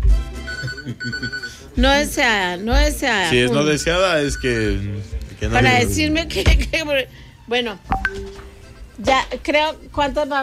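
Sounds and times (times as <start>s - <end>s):
telephone ringing: 0.5s - 1.7s
speech: 0.9s - 8.4s, 9.0s - 10.4s.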